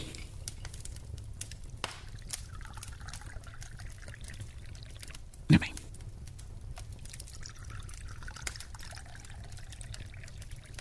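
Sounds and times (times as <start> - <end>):
low rumble: 0.0 - 10.7
tea pouring into a cup by a fireplace: 2.2 - 5.2, 7.0 - 10.7.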